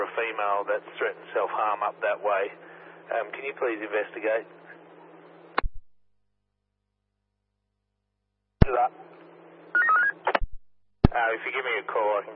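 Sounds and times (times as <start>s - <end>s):
faint steady hum: 0.0s - 6.1s, 8.6s - 12.3s
speech: 0.2s - 4.6s, 8.7s - 9.1s, 11.2s - 12.3s
telephone touch-tone dialing beeps: 9.8s - 10.2s.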